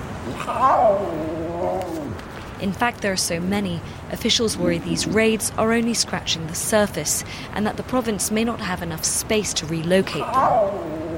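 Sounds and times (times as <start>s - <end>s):
low noise: 0.0s - 11.1s
speech: 0.3s - 11.0s
big cat cub crying in a large cage: 0.4s - 2.2s, 4.3s - 5.4s, 10.2s - 11.1s.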